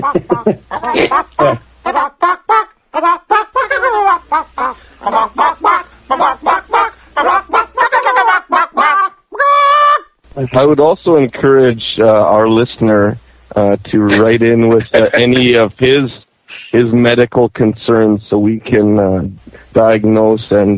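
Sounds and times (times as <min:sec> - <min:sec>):
laughter: 0:00.0 - 0:01.6, 0:13.8 - 0:16.2
speech: 0:00.0 - 0:01.7, 0:10.6 - 0:20.7
chicken clucking and squawking: 0:00.0 - 0:09.6.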